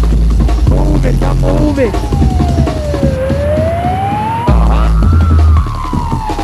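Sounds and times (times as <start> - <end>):
jungle techno beat with heavy bass thumps: 0.0 - 6.4
loud wailing siren: 1.6 - 6.4
speech: 1.8 - 2.2.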